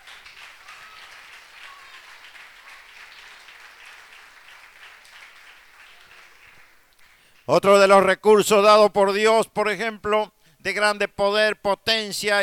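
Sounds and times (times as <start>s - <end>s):
congregation applauding during a church sermon: 0.0s - 7.6s
speech: 7.5s - 12.4s.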